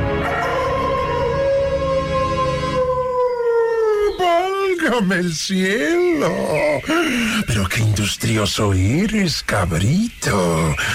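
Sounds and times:
wolf howling: 0:00.1 - 0:04.5
speech: 0:04.9 - 0:10.9.

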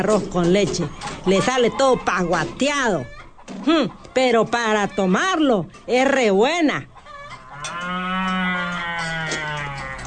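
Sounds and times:
speech: 0:00.0 - 0:06.9
long loud cow moo: 0:07.4 - 0:10.0.

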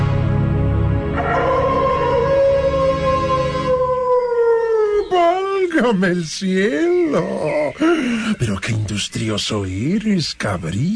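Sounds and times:
wolf howling: 0:01.1 - 0:05.7
speech: 0:05.8 - 0:10.9.

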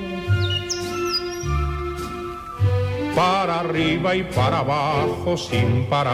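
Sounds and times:
sustained musical tones: 0:00.0 - 0:04.2
small bird chirping and warbling: 0:00.3 - 0:02.5
speech: 0:03.2 - 0:06.1.

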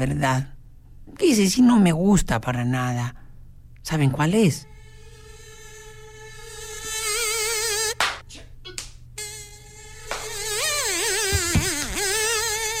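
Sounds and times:
speech: 0:00.0 - 0:00.5, 0:01.1 - 0:03.2, 0:03.8 - 0:04.7
mosquito whine: 0:04.6 - 0:08.0, 0:09.2 - 0:12.7
rustling thumps: 0:11.2 - 0:11.9.

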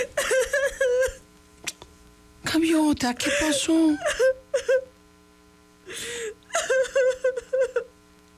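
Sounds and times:
woman crying and whimpering in breathy sobs: 0:00.0 - 0:01.2, 0:03.2 - 0:04.9, 0:05.9 - 0:07.9
speech: 0:02.6 - 0:04.4.

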